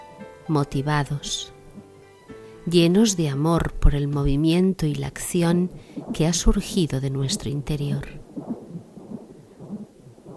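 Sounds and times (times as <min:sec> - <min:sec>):
speech: 0:00.5 - 0:01.6, 0:02.6 - 0:08.2
heartbeat thumps: 0:01.7 - 0:02.0, 0:05.5 - 0:10.3.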